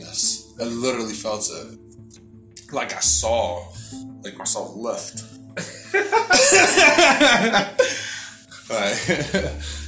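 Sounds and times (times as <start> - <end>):
speech: 0.6 - 2.0, 2.7 - 8.0, 8.7 - 9.8
harsh raspy coughing fit: 5.6 - 8.1
voiced laugh-like sputtering: 5.6 - 8.1.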